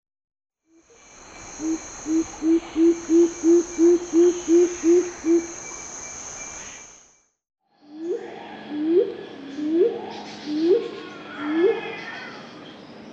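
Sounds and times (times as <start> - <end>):
faint insect hiss: 0.6 - 10.6
speech: 1.6 - 4.0
Superb fruit dove giving low hoots: 1.6 - 5.5, 8.0 - 12.4.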